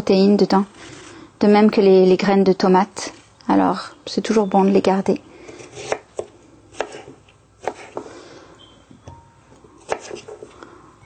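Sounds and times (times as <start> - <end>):
speech: 0.0 - 5.9
knife chopping a cucumber into chunky pieces: 5.6 - 8.0, 9.8 - 10.5.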